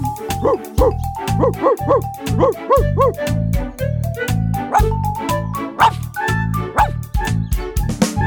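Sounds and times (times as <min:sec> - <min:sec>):
bright steady musical backing: 0:00.0 - 0:08.2
dog barking: 0:00.4 - 0:03.2, 0:05.8 - 0:06.0, 0:06.7 - 0:07.0.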